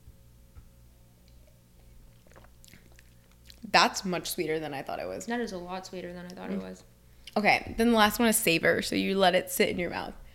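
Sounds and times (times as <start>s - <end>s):
steady low hum: 0.0s - 10.3s
person sipping wine during a tasting: 1.2s - 3.7s
speech: 3.7s - 10.2s.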